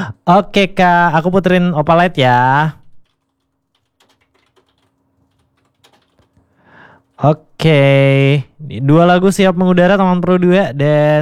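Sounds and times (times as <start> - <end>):
speech: 0.3 - 2.8, 7.2 - 11.2
typing on a computer keyboard: 3.0 - 8.6.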